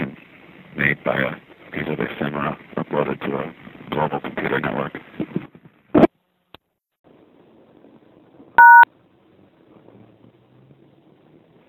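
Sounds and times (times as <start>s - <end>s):
speech: 0.8s - 5.2s
outdoor payphone sharp click: 8.6s - 8.8s
payphone touch-tone beep: 8.6s - 8.9s.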